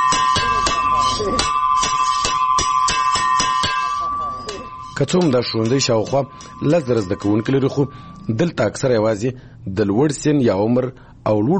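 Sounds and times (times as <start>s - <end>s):
school break bell ringing at a school in Lashkar Gah: 0.0s - 8.7s
speech: 5.0s - 11.5s.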